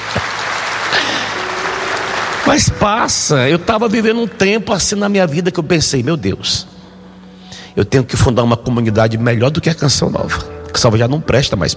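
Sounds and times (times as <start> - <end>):
audience applause at a Catholic religious gathering: 0.0 - 4.3
speech: 2.5 - 6.7, 7.8 - 11.7.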